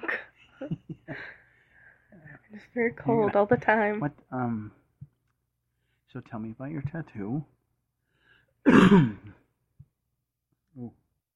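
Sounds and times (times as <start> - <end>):
speech: 2.8 - 4.8, 6.1 - 7.6, 8.6 - 9.4, 10.8 - 11.0
cough into a hand: 8.6 - 9.4.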